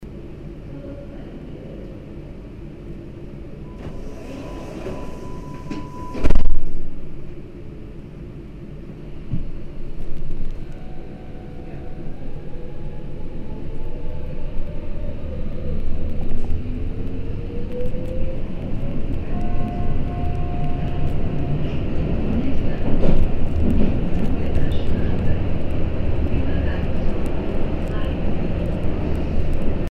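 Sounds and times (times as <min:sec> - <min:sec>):
subway train departing heard from inside: 0:00.0 - 0:29.8.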